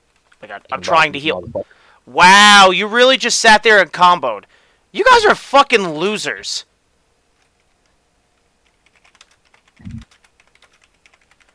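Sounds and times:
forceful typing on a computer keyboard: 0:00.1 - 0:00.7, 0:08.6 - 0:11.5
speech: 0:00.4 - 0:06.7.

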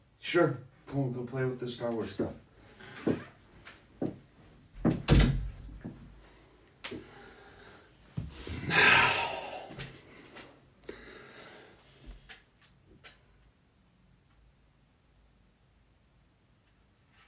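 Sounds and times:
speech: 0:00.3 - 0:02.4, 0:03.0 - 0:03.3
banging on a door: 0:04.8 - 0:05.6
breathy rush: 0:07.0 - 0:10.3.

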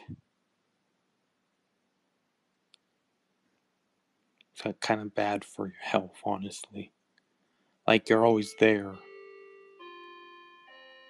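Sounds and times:
speech: 0:04.6 - 0:07.0, 0:07.9 - 0:09.1
clock chiming: 0:08.1 - 0:11.0.

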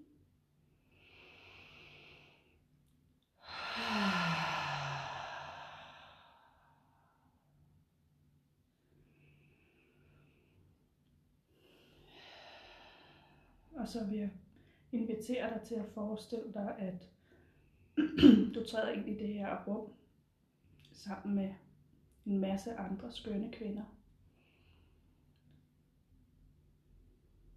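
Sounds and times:
deep breathing in and out: 0:00.7 - 0:02.8, 0:03.4 - 0:07.6, 0:08.7 - 0:13.7, 0:14.5 - 0:14.9, 0:17.1 - 0:18.0, 0:24.2 - 0:25.4
soft voiced sigh: 0:03.4 - 0:06.6
speech: 0:13.8 - 0:17.2, 0:18.0 - 0:20.0, 0:21.0 - 0:21.6, 0:22.2 - 0:24.0.

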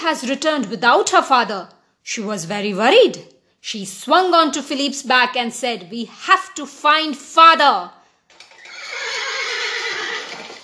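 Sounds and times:
speech: 0:00.1 - 0:08.0
horse neighing: 0:08.4 - 0:10.6.

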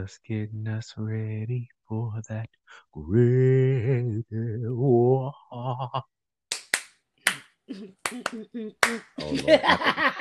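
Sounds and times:
speech: 0:00.0 - 0:06.2, 0:07.7 - 0:10.1
sharp hand claps: 0:06.5 - 0:07.4, 0:08.0 - 0:09.6
laughter: 0:09.2 - 0:10.1.

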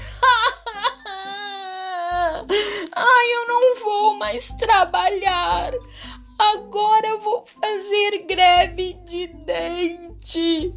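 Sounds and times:
person imitating crying: 0:00.1 - 0:02.5
speech: 0:02.4 - 0:10.7.

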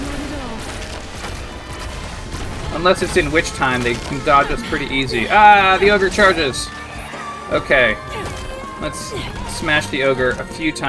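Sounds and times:
crashing noise: 0:00.0 - 0:08.5
video game giant cannon fire with heavy booming blasts: 0:00.0 - 0:10.6
speech: 0:02.8 - 0:06.8, 0:07.5 - 0:10.8.

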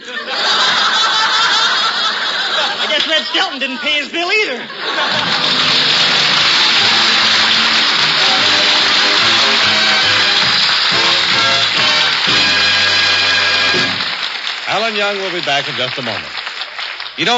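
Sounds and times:
laughter: 0:00.0 - 0:12.8
speech: 0:03.2 - 0:05.6, 0:14.9 - 0:16.4, 0:17.2 - 0:17.3
hot water faucet running while dishes are washed: 0:05.6 - 0:14.3.

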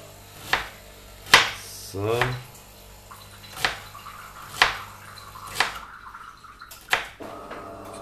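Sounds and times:
coffee machine running with drip-like ticks and low hum: 0:00.0 - 0:05.9, 0:07.2 - 0:07.9
freshly sharpened knife chopping a small onion on a cutting board: 0:00.4 - 0:01.6, 0:03.5 - 0:04.9, 0:05.5 - 0:05.8
speech: 0:01.9 - 0:02.5.

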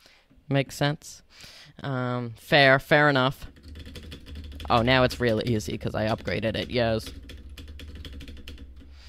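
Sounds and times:
speech: 0:00.5 - 0:03.9, 0:04.7 - 0:07.2
keyboard keys being pressed rapidly: 0:03.5 - 0:09.0.

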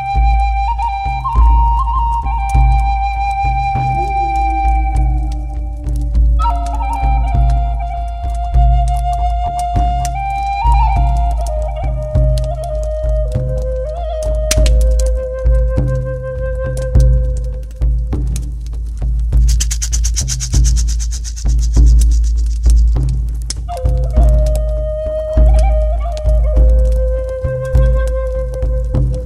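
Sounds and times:
flute playing long sliding held notes: 0:00.0 - 0:17.8, 0:23.7 - 0:29.2
scattered small clicks and crackles: 0:00.0 - 0:29.2
steady deep drum rumble: 0:00.2 - 0:29.2
rattle shaking: 0:19.4 - 0:23.3.

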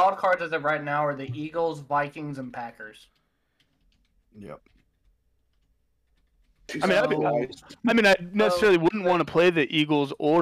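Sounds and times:
speech: 0:00.1 - 0:03.2, 0:04.3 - 0:04.8, 0:06.7 - 0:10.3
soft typing on a computer keyboard: 0:03.0 - 0:06.7.

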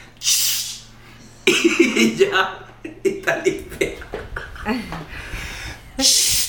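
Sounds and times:
voice imitating an aerosol air freshener spray hiss: 0:00.2 - 0:00.9, 0:06.0 - 0:06.4
speech: 0:01.5 - 0:04.0, 0:04.6 - 0:05.1, 0:06.0 - 0:06.4
laughter: 0:01.5 - 0:05.1.

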